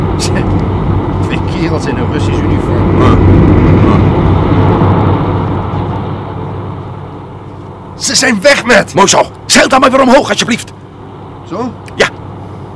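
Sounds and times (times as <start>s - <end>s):
small streamlined car driving alongside: 0.0s - 12.7s
speech: 1.7s - 3.4s, 8.2s - 10.8s, 11.5s - 12.1s.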